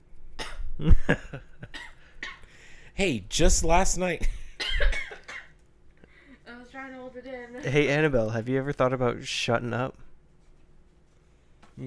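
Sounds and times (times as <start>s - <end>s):
person coughing: 0.4s - 2.5s, 4.4s - 5.6s
speech: 0.8s - 1.9s, 3.0s - 4.4s, 7.2s - 10.1s.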